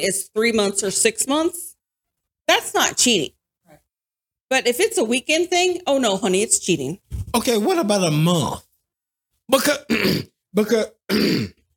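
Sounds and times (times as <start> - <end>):
speech: 0.0 - 1.7, 2.5 - 3.4, 4.5 - 8.6, 9.5 - 11.6
person clearing throat of apple pie stuck in it: 9.6 - 10.4, 11.1 - 11.6.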